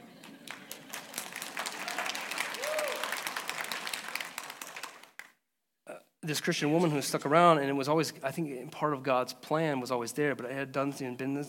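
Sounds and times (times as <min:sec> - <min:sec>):
crowd applauding: 0:00.0 - 0:05.3
faint cheer: 0:01.5 - 0:04.0
speech: 0:06.3 - 0:11.4.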